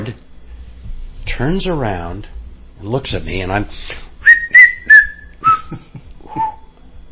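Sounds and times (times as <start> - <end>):
speech: 0.0 - 0.3, 1.4 - 4.1, 5.7 - 6.5
man whistling a short tune on a film set: 4.2 - 6.7.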